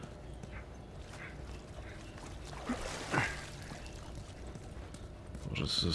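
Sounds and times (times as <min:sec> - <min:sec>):
water sloshing in a tunnel: 0:00.8 - 0:05.2
water splashes: 0:01.0 - 0:04.7
speech: 0:05.6 - 0:05.9.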